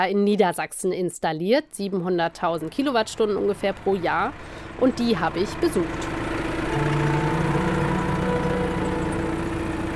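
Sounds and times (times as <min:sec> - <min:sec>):
speech: 0:00.0 - 0:06.2
tractor engine drone: 0:02.0 - 0:09.9.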